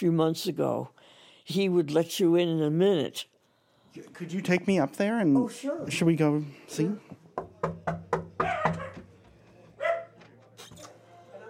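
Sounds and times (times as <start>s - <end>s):
speech: 0.0s - 3.3s, 3.9s - 8.2s
small dog barking at an apartment: 8.4s - 9.0s, 9.8s - 10.2s.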